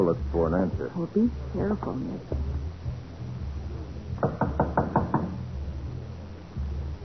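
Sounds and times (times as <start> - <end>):
speech: 0.0 - 2.4
low hum: 0.0 - 7.0
firm knocking on a door: 4.2 - 5.4.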